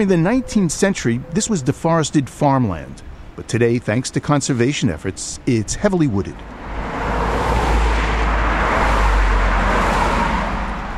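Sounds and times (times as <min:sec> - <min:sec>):
speech: 0:00.0 - 0:06.9
cars rushing past on a nearby road: 0:06.4 - 0:10.9.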